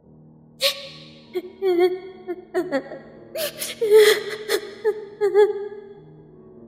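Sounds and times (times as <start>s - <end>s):
girl crying at night on a small dirt path among bushes: 0.6s - 5.9s.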